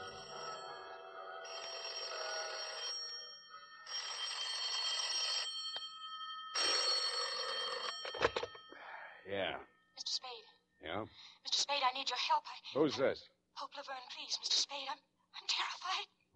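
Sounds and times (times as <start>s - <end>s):
bells ringing: 0.0s - 9.2s
speech: 9.3s - 16.3s.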